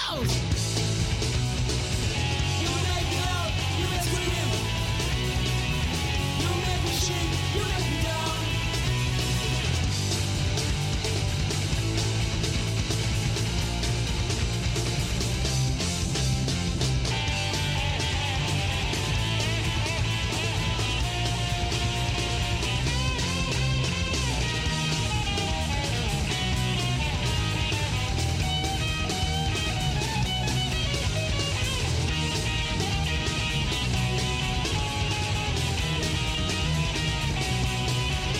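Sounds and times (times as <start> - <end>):
shouted vocals: 0.0 - 0.4, 2.4 - 5.2, 6.1 - 9.1
distorted guitars: 0.0 - 38.3
thick bass: 0.0 - 38.3.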